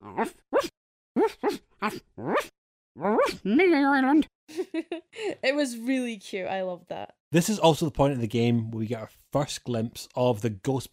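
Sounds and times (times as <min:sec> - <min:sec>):
dog yipping: 0:00.0 - 0:03.4
speech: 0:00.2 - 0:00.4, 0:05.6 - 0:10.9
dog barking: 0:00.2 - 0:02.5
laughter: 0:04.5 - 0:05.4.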